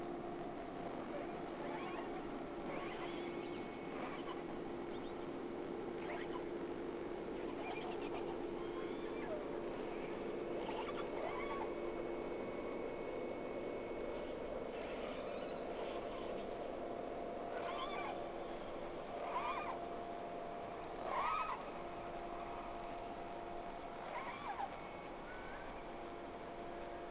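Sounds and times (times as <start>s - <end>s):
steady hiss and hum: 0.0s - 27.1s
whale arched rising-then-falling tonal cries with harmonics: 0.8s - 6.6s, 7.3s - 20.2s, 20.8s - 23.0s, 23.8s - 27.1s.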